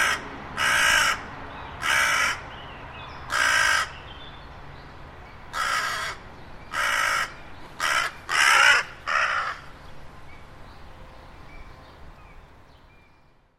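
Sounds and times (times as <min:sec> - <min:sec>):
bird giving harsh raspy caws: 0:00.0 - 0:01.2, 0:01.8 - 0:02.4, 0:03.3 - 0:04.0, 0:05.5 - 0:09.7.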